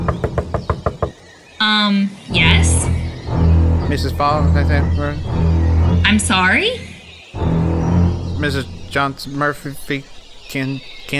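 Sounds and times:
hollow knocking on a wooden door in the woods: 0:00.0 - 0:01.2
speech: 0:01.6 - 0:02.9, 0:03.9 - 0:07.5, 0:08.4 - 0:11.1.

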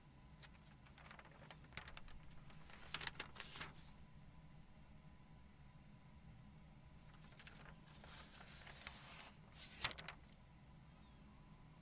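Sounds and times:
steady hum: 0:00.0 - 0:11.8
book pages turning: 0:00.4 - 0:04.0, 0:07.1 - 0:10.3.

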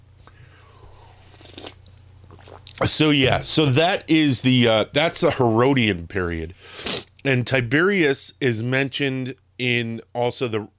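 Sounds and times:
person sipping coffee: 0:00.3 - 0:02.8
swallow: 0:00.7 - 0:02.8
speech: 0:02.8 - 0:10.7.

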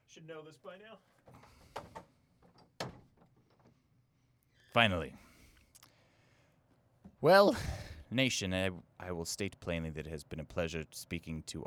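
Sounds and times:
speech: 0:00.2 - 0:02.0, 0:04.7 - 0:05.3, 0:07.2 - 0:11.6
door being pushed open: 0:01.3 - 0:03.8.

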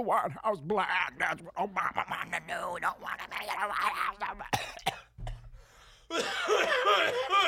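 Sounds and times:
speech: 0:00.0 - 0:05.0, 0:06.1 - 0:07.4
sharp coughs: 0:04.5 - 0:05.5, 0:06.1 - 0:07.4.

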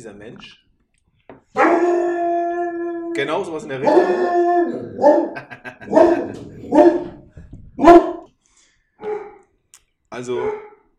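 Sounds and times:
speech: 0:00.0 - 0:00.6, 0:03.2 - 0:07.1, 0:07.8 - 0:08.1, 0:10.2 - 0:10.7
dog barking and yelping while nibbling at a person's foot: 0:01.6 - 0:03.0, 0:03.7 - 0:08.3, 0:09.0 - 0:09.4, 0:10.3 - 0:10.8
laughter: 0:05.2 - 0:06.7.

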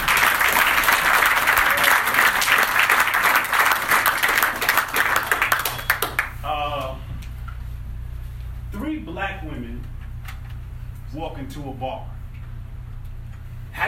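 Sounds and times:
audience applauding: 0:00.0 - 0:06.4
speech: 0:11.4 - 0:12.1.

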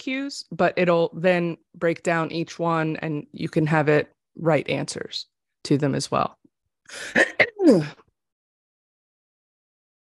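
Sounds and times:
speech: 0:00.0 - 0:08.0
person coughing: 0:06.9 - 0:08.0.

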